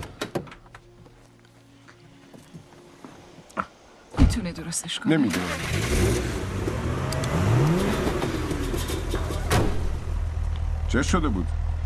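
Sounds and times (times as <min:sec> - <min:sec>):
speech: 0:04.4 - 0:06.4, 0:10.9 - 0:11.6
car engine starting and revving with a rising whine: 0:05.1 - 0:10.4.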